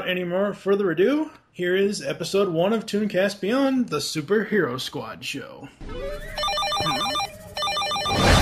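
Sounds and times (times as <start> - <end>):
speech: 0.1 - 7.1
telephone ringing with warbling electronic trills in an animated superhero cartoon: 6.2 - 8.3.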